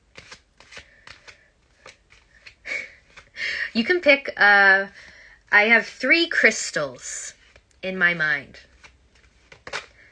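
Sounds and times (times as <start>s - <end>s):
cards being shuffled and pulled: 0.0s - 3.4s, 7.3s - 7.8s, 8.5s - 10.1s
speech: 3.8s - 8.7s.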